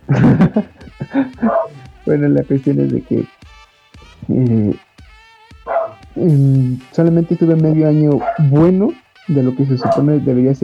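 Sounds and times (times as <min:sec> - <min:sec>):
laughter: 0:00.0 - 0:10.6
speech: 0:00.1 - 0:00.7, 0:02.1 - 0:03.5, 0:04.3 - 0:04.8, 0:06.2 - 0:10.6
dogs barking: 0:00.2 - 0:03.1, 0:05.6 - 0:06.2, 0:06.8 - 0:10.6.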